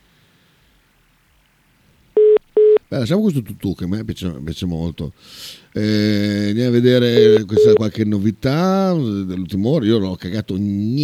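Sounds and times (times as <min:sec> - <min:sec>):
electronic telephone beeps as a caller is put on hold: 0:02.2 - 0:02.8, 0:07.2 - 0:07.8
speech: 0:02.9 - 0:11.0.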